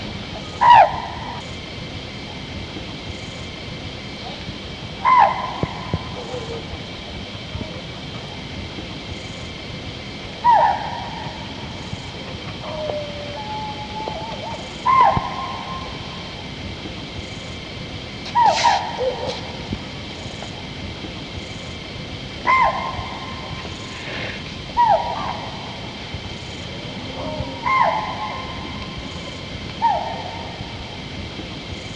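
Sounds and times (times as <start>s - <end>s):
chital alarm call in Dudhwa National Park: 4.2s - 8.4s, 10.4s - 16.6s, 18.2s - 20.6s, 22.4s - 31.0s.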